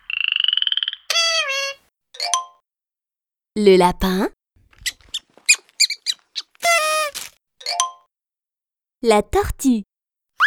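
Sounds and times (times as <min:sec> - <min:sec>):
frog croaking: 0:00.0 - 0:01.8, 0:04.8 - 0:07.2
speech: 0:03.6 - 0:04.4, 0:09.0 - 0:09.9.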